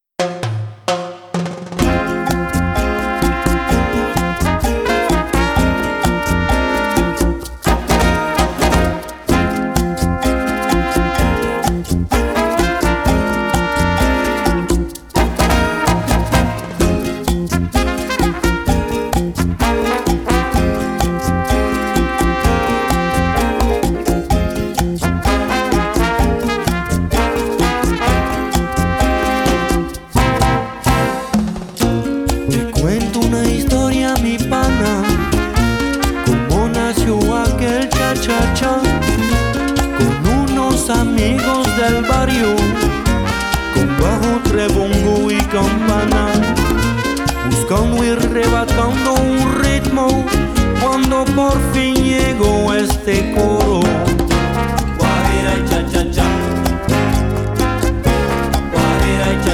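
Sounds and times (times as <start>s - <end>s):
rumba mambo cha cha cha dance music: 0.0s - 59.5s.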